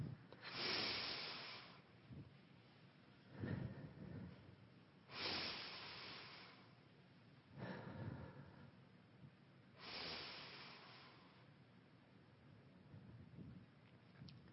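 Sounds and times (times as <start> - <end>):
deep breathing during a guided mindful breathing exercise: 0.0 - 2.2, 3.2 - 6.8, 7.5 - 8.9, 9.8 - 11.5.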